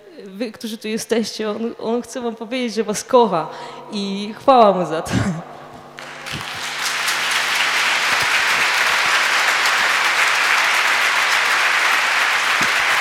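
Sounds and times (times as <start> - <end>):
speech: 0.2 - 5.5
large audience applauding: 6.0 - 12.9.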